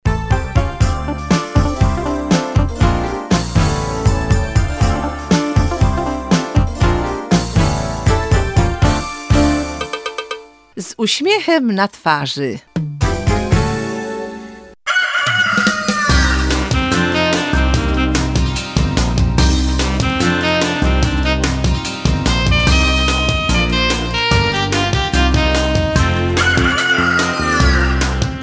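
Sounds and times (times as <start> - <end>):
bright upbeat music with a steady bouncing beat: 0.1 - 10.7, 12.7 - 14.0, 15.6 - 28.4
speech: 11.0 - 12.9
rooster crowing: 14.8 - 16.5, 26.4 - 28.1.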